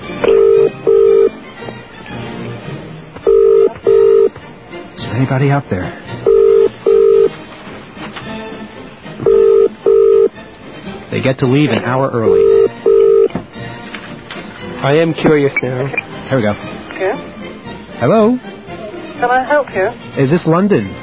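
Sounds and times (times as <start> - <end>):
telephone ringback tone heard over the line on a call: 0.2 - 1.3, 3.2 - 4.3, 6.2 - 7.3, 9.2 - 10.3, 12.2 - 13.3
speech: 5.2 - 6.0, 11.2 - 12.6, 14.8 - 17.3, 18.0 - 18.5, 19.2 - 21.0.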